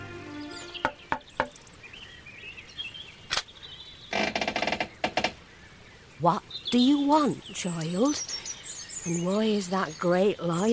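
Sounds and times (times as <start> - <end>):
faint bird-like chirps: 0.3 - 10.7
knocking on a farmhouse door: 0.8 - 1.6
speech: 6.2 - 8.3, 9.0 - 10.7.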